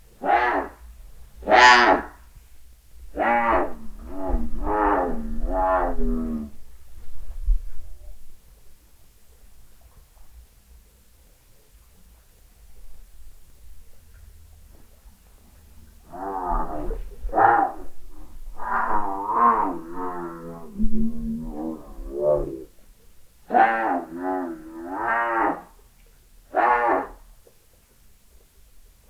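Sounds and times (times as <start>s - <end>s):
black jaguar vocalising at a zoo: 0.2s - 2.2s, 3.0s - 6.7s, 16.1s - 22.8s, 23.5s - 25.7s, 26.5s - 27.2s.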